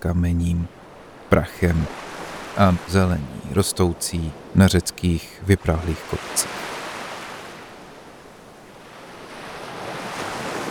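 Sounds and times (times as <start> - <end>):
speech: 0.0 - 6.8
sea waves washing into a bay: 0.2 - 10.6.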